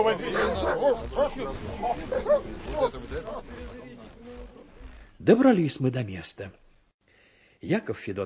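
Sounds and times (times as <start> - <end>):
speech: 0.0 - 4.6, 5.2 - 6.6, 7.6 - 8.2
indistinct human voices murmuring: 0.0 - 5.0
hunting dogs barking and yelping on the trail during a bear hunt: 0.2 - 2.9.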